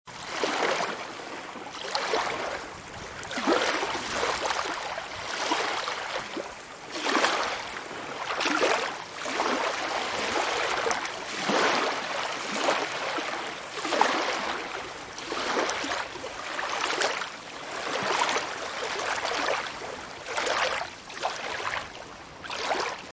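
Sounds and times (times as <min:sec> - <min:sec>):
light lake waves: 0:00.1 - 0:23.1
wind: 0:00.1 - 0:23.1.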